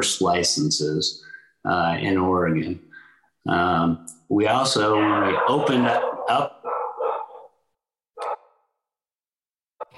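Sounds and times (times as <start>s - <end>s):
speech: 0.0s - 6.6s
dog barking: 4.8s - 7.6s, 8.2s - 8.6s.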